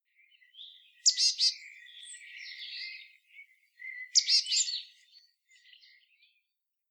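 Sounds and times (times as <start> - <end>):
marsh tit Poecile palustris calling: 1.0 - 3.1, 3.8 - 4.9.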